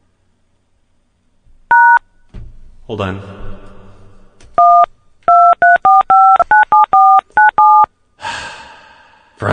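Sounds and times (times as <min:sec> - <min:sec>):
touch-tone telephone keypad dialing beeps: 0:01.7 - 0:02.0, 0:04.6 - 0:07.9
speech: 0:02.9 - 0:03.4.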